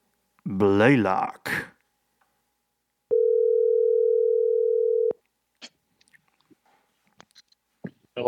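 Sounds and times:
speech: 0.4s - 1.7s
telephone ringing tone: 3.1s - 5.2s
rustling noises on the telephone line: 5.6s - 8.2s.

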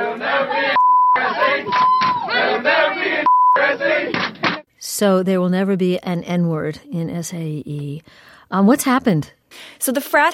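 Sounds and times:
loud group chanting in a fraternity video: 0.0s - 4.7s
high censor bleeps: 0.8s - 2.3s, 3.2s - 3.7s
speech: 5.0s - 10.3s.

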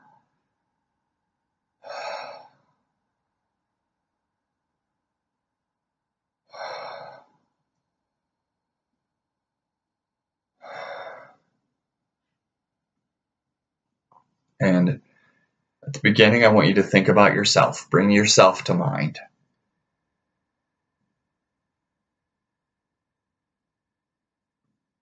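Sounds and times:
deep heavy breathing close to the microphone: 1.8s - 2.6s, 10.6s - 11.4s
speech: 14.6s - 15.0s, 15.9s - 19.3s.

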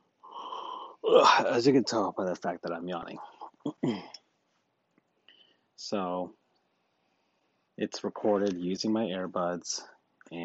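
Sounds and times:
person yawning: 0.3s - 1.4s
speech: 1.1s - 4.2s, 5.8s - 6.4s, 7.8s - 10.4s.

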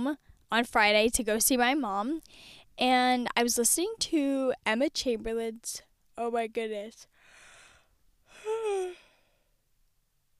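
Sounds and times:
speech: 0.0s - 7.1s
person yawning: 8.3s - 9.2s.

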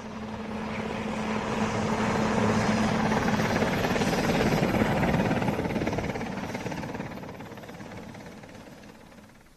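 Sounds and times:
helicopter engine roar: 0.0s - 9.5s.

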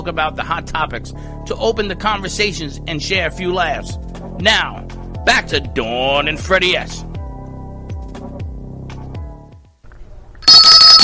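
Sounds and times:
speech: 0.0s - 7.1s
telephone ringing in a steady electronic pattern: 10.4s - 11.0s.

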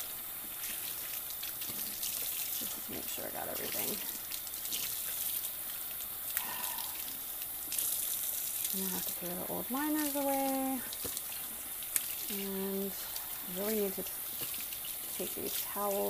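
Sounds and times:
water running from a tap: 0.0s - 16.0s
speech: 3.2s - 4.2s, 8.8s - 11.1s, 12.3s - 14.3s, 15.2s - 16.0s.

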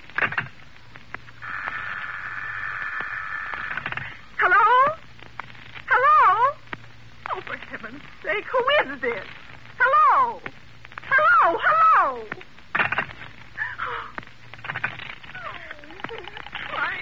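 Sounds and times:
crackles and clicks on a faulty telephone line: 0.0s - 16.9s
steady buzzing tone on a faulty telephone line: 0.0s - 16.9s
speech: 8.5s - 9.4s.

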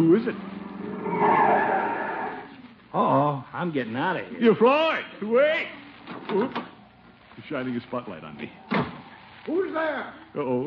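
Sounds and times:
speech: 0.0s - 0.6s, 1.2s - 1.7s, 2.9s - 6.7s, 7.4s - 8.8s, 9.5s - 10.6s
car tires skidding as a car pulls up: 0.6s - 2.6s.

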